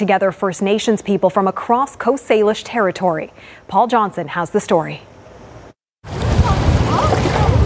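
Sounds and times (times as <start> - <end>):
speech: 0.0 - 5.1
wind on the Fraser River: 0.0 - 7.6
canoe paddles splashing during canoe races: 6.0 - 7.6
rushing water of the Fraser River during canoe races: 6.0 - 7.6.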